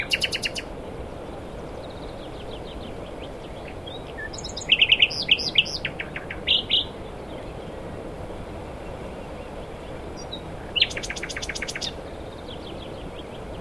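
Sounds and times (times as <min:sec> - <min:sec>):
common nightingale Luscinia megarhynchos singing: 0:00.0 - 0:00.7, 0:01.7 - 0:07.6, 0:09.4 - 0:13.5.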